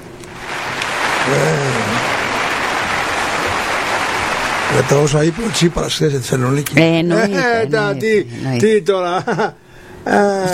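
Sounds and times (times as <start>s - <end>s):
applause: 0.0s - 6.6s
voice or cheer from the crowd: 1.2s - 2.2s
speech: 1.3s - 2.0s, 4.8s - 10.5s.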